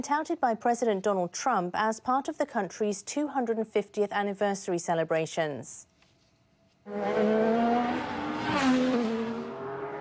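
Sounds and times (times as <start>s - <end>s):
speech: 0.0s - 5.9s, 6.9s - 9.0s
IndyCar race car engines roaring on a street circuit: 6.9s - 9.9s.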